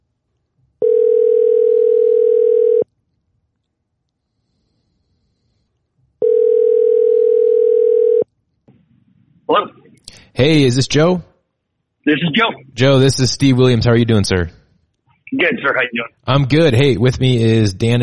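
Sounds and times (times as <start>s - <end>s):
telephone dial tone as a phone call is placed: 0.8s - 2.9s, 6.2s - 8.3s
speech: 10.4s - 11.3s, 12.0s - 14.6s, 15.3s - 18.0s.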